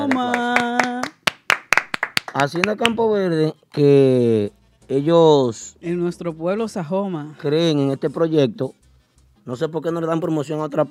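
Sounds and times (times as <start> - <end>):
hands clapping: 0.0 - 3.8
speech: 2.4 - 8.8, 9.4 - 10.8.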